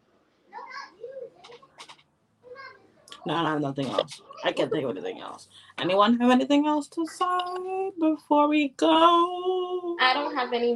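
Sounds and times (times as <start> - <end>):
children shouting and squealing in another room: 0.5 - 1.7, 2.4 - 3.0
speech: 3.2 - 10.7.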